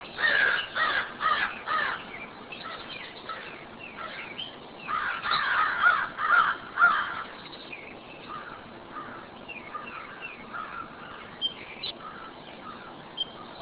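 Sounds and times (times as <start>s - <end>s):
crows: 0.2s - 4.3s, 4.9s - 7.4s, 8.3s - 11.3s, 11.9s - 13.0s.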